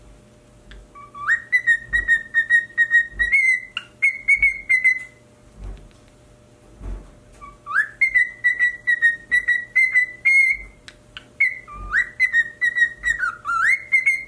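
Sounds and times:
cockatiel singing long level whistles: 0.9s - 5.2s, 7.4s - 14.2s.

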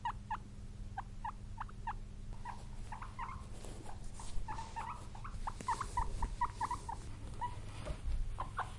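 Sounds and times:
guinea pig chirping in brief repeated squeaks: 0.0s - 8.7s
rustling: 2.3s - 8.7s.

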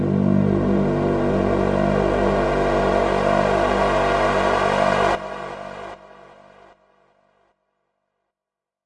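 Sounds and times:
cinematic impact climax intro: 0.2s - 6.9s.

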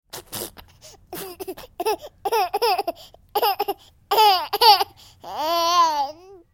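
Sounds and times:
baby laughing: 1.1s - 6.3s.

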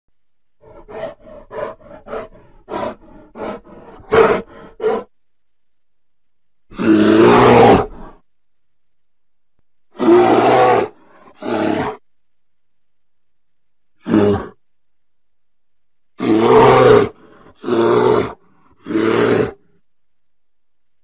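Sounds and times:
grizzly bear sounds: 0.6s - 5.2s, 6.7s - 8.2s, 9.9s - 12.0s, 14.0s - 14.6s, 16.2s - 19.8s.

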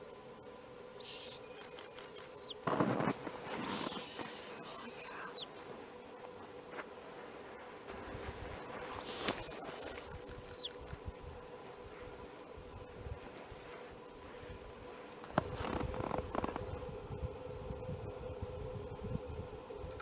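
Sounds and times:
low steady hum: 0.0s - 19.9s
snowy owl giving long high descending whistled screams: 1.0s - 2.6s, 3.6s - 5.5s, 9.0s - 10.7s
crackling bursts: 1.0s - 5.8s, 7.1s - 11.0s, 13.1s - 16.8s.

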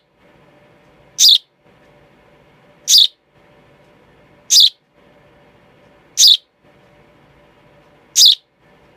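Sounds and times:
quiet low hum: 0.0s - 8.9s
young sparrow chick chirping: 1.2s - 1.5s, 2.9s - 3.2s, 4.5s - 4.8s, 6.2s - 6.5s, 8.2s - 8.4s.

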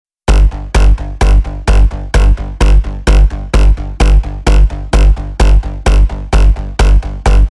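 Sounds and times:
hardcore EDM house bass kick: 0.3s - 7.4s.

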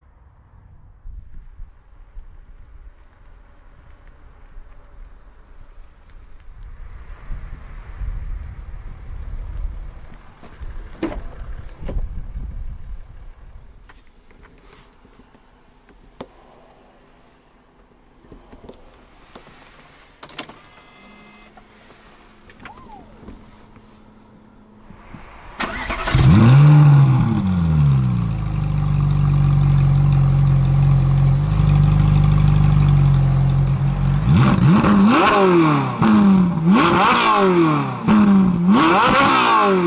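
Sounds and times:
motorcycle accelerating: 22.5s - 39.8s.

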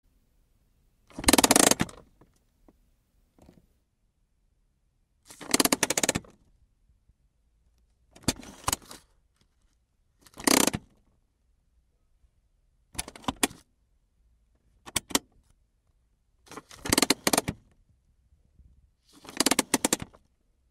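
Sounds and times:
car handbrake: 1.1s - 2.0s, 5.4s - 6.3s, 10.4s - 10.9s, 14.9s - 15.2s, 16.5s - 17.6s, 19.2s - 20.1s.

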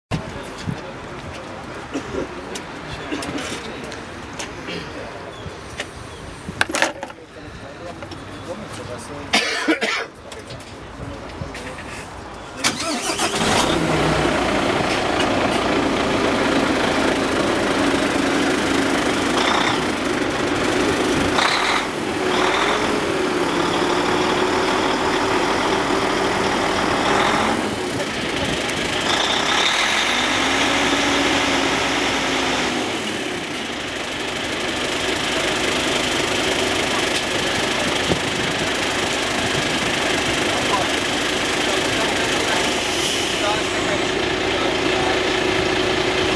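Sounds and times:
FH16 750 truck: 0.1s - 46.3s.

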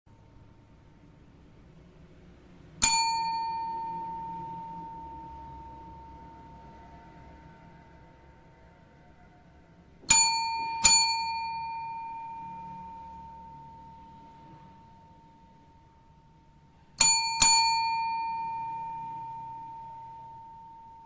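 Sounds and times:
hotel bell ringing: 2.8s - 8.1s, 10.0s - 21.0s.

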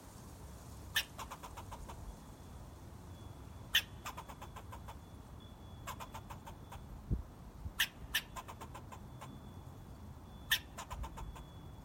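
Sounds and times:
squirrel chirping: 0.9s - 2.1s, 3.6s - 7.0s, 7.7s - 9.5s, 10.3s - 11.8s.

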